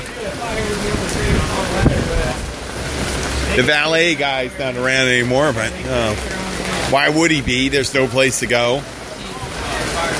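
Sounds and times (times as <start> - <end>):
heavy wind and rain on a main street in Lakeland: 0.0 - 10.1
speech: 0.2 - 9.0
gusty wind buffeting the microphone: 0.4 - 3.6.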